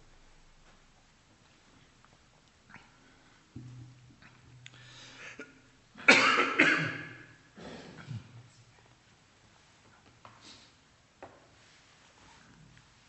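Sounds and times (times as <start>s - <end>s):
person coughing: 5.2s - 8.4s.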